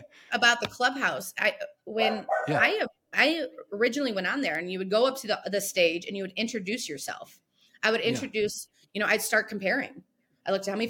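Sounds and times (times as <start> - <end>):
speech: 0.3 - 10.8
dog barking: 2.0 - 2.6.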